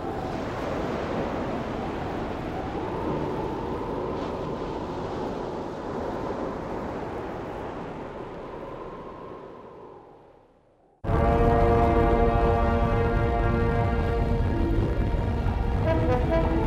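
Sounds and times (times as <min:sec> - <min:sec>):
continuous roaring sea waves surging and washing: 0:00.0 - 0:16.6.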